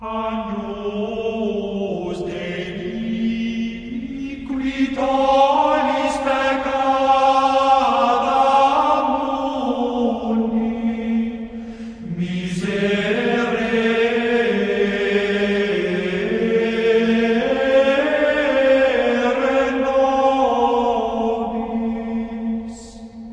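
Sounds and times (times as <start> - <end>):
man singing Gregorian chant: 0.0 - 23.2.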